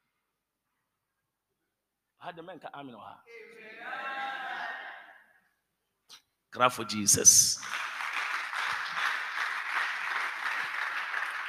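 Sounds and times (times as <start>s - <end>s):
speech: 2.2s - 4.1s, 6.5s - 7.8s
crowd clapping: 7.5s - 11.4s.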